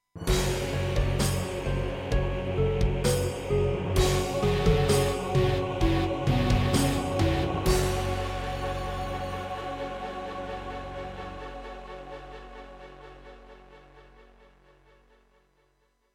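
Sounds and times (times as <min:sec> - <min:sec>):
introduction music on a Serdaco X3MB sound module: 0:00.2 - 0:15.3.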